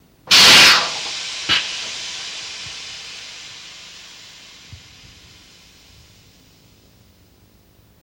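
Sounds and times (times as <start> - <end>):
diesel truck air brakes: 0.3 - 6.7.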